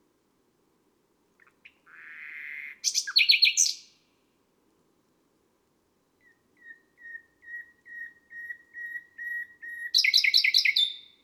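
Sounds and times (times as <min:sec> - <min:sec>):
nightingale song on a May night: 0:01.4 - 0:04.1, 0:06.1 - 0:11.2.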